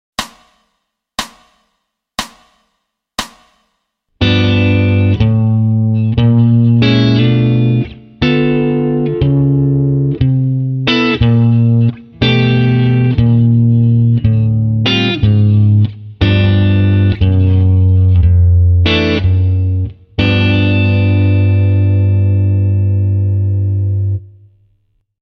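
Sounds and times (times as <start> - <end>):
slow G7 walk with fourths voicings: 4.2 - 24.4.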